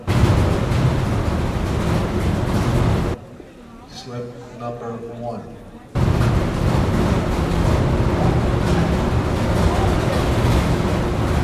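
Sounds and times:
ferry boat engines rumbling while loading at a terminal: 0.0 - 3.3, 6.0 - 11.4
speech: 4.7 - 5.7.

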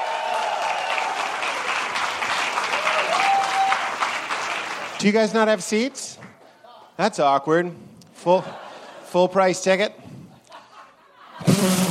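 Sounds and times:
crowd applauding at a live podcast: 0.0 - 5.1
speech: 5.0 - 6.2, 7.0 - 10.1
laughter: 8.2 - 9.2, 10.3 - 11.7.

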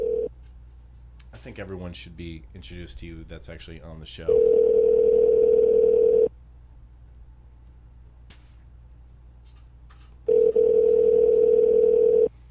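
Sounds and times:
ringback tones of an outgoing phone call: 0.0 - 0.3, 4.3 - 6.3, 10.3 - 12.3
speech: 1.4 - 4.7.

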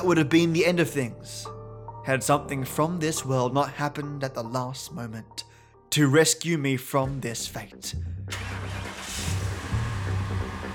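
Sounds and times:
speech: 0.0 - 9.0
car engine starting and revving: 8.3 - 10.7.

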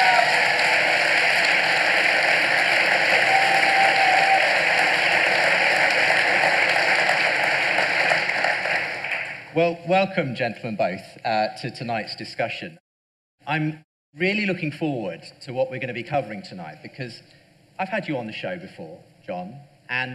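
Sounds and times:
large audience applause: 0.0 - 9.5
speech: 9.6 - 12.8, 13.5 - 20.1.

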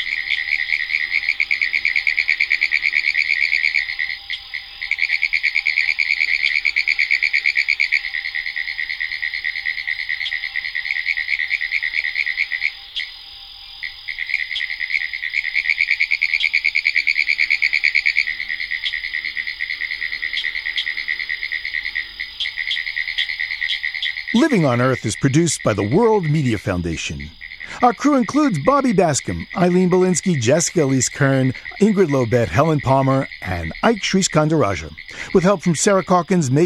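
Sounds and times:
chorus of pine woods tree frogs trilling: 0.0 - 36.6
speech: 24.4 - 36.6.

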